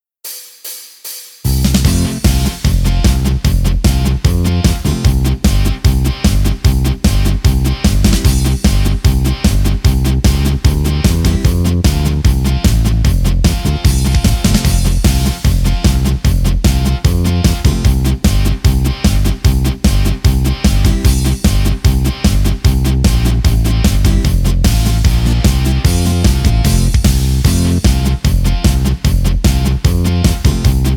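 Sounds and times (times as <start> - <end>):
polka music in G C F B: 1.5 - 30.9.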